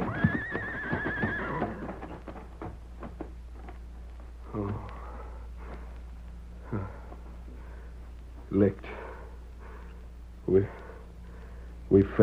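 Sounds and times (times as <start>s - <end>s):
horse whinnying: 0.0s - 2.1s
steady low hum: 0.0s - 12.2s
knocking sounds: 1.0s - 3.7s.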